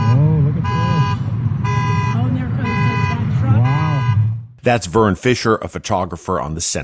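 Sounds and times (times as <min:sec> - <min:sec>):
car alarm blaring from cars floating in a flooded parking lot: 0:00.0 - 0:04.6
car horns blaring from cars floating in a flooded parking lot: 0:00.0 - 0:06.1
indistinct voices: 0:00.0 - 0:06.8
speech: 0:04.6 - 0:06.8.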